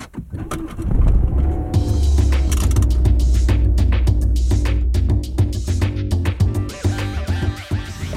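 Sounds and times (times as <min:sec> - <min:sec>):
clicks and rattles inside the car cabin: 0:00.0 - 0:01.6
car engine pulling away and driving: 0:00.1 - 0:07.3.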